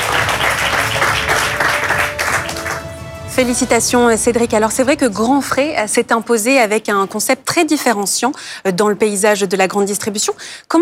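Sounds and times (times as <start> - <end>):
crowd applauding: 0.0 - 4.4
speech: 3.4 - 10.8.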